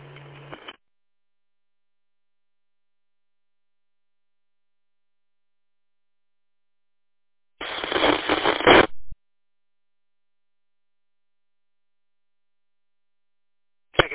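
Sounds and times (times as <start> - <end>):
harsh radio static from a weak transmission: 0.0 - 0.8, 7.6 - 9.2, 14.0 - 14.1.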